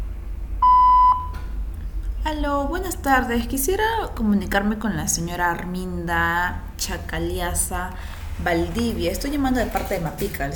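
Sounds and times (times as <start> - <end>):
low hum: 0.0 - 10.5
answering machine beep: 0.6 - 1.4
speech: 2.3 - 10.5.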